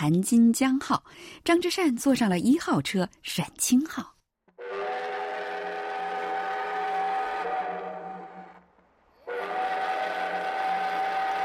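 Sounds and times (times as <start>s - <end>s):
speech: 0.0s - 4.2s
steam train whistle blasts: 4.6s - 8.6s, 9.2s - 11.4s.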